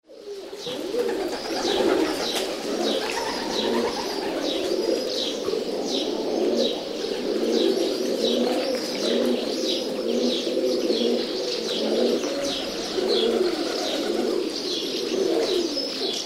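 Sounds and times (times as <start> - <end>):
feral pigeon: 0.1 - 16.2.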